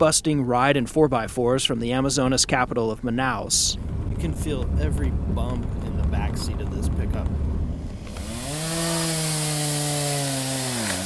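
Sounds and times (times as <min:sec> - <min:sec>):
speech: 0:00.0 - 0:07.5
chainsaw cutting fallen trees: 0:08.0 - 0:11.0.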